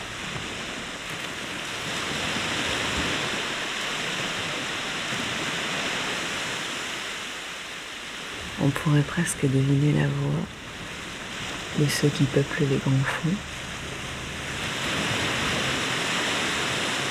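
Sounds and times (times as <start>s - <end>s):
ocean swell waves washing in: 0.0s - 17.0s
speech: 8.6s - 10.6s, 11.8s - 13.5s.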